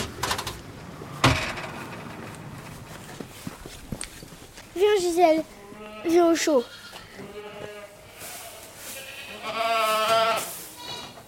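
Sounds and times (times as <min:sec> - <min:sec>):
speech: 0:04.8 - 0:06.8
baby goats bleating: 0:05.5 - 0:11.2.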